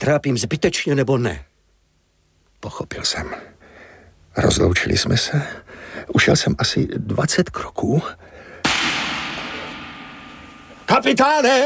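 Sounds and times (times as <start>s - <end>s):
speech: 0.0s - 1.5s, 2.6s - 3.6s, 4.4s - 8.3s, 10.9s - 11.6s
gunshot: 8.6s - 10.9s.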